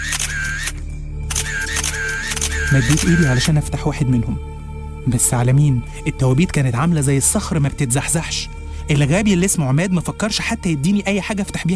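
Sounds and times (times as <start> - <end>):
camera shutter clicks photographing closed coffins inside a tomb: 0.0 - 3.5
speech: 2.7 - 11.7.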